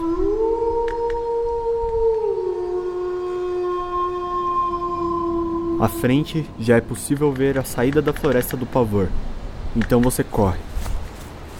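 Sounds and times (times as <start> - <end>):
long sustained wavering howl: 0.0 - 7.9
speech: 5.8 - 10.7.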